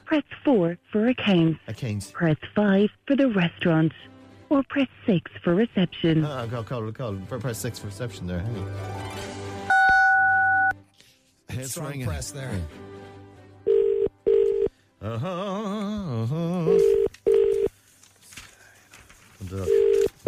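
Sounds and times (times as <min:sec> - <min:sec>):
speech: 0:00.1 - 0:09.4, 0:11.5 - 0:12.9, 0:15.0 - 0:17.0, 0:19.4 - 0:20.2
keypad beep: 0:09.7 - 0:10.7
telephone ringback tone down a phone line: 0:09.7 - 0:10.8, 0:13.7 - 0:14.7, 0:16.7 - 0:17.7, 0:19.7 - 0:20.2.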